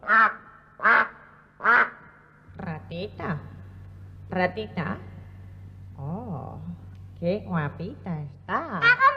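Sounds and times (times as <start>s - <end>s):
duck quacking: 0.0s - 2.1s
speech: 2.9s - 3.5s, 4.3s - 5.1s, 7.2s - 9.0s.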